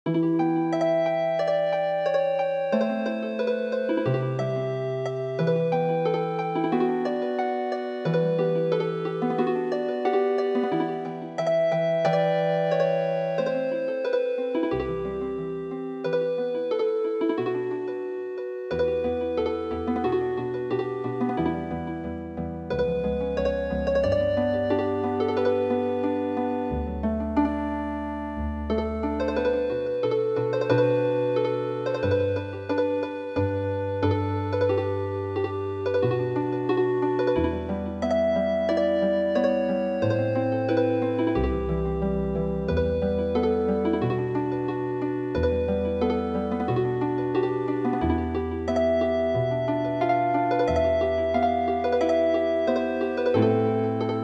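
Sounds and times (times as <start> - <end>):
traditional MIDI harp music: 0.0 - 54.2.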